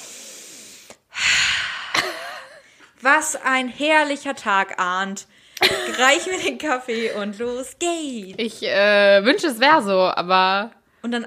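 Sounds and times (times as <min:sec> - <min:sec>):
person inhaling deeply through the nose and mouth: 0:00.0 - 0:02.0
speech: 0:03.0 - 0:11.2.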